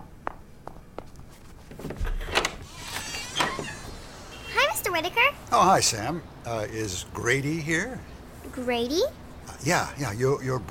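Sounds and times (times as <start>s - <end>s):
quick footsteps: 0.0s - 2.1s
door unlatched and pulled open with a rattle: 1.8s - 4.8s
brief scraping creak of a door: 2.1s - 4.6s
speech: 5.0s - 10.7s.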